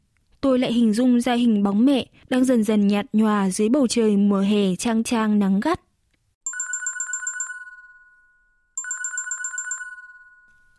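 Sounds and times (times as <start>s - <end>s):
speech: 0.4s - 5.8s
electronic warbling telephone ringtone: 6.4s - 10.7s.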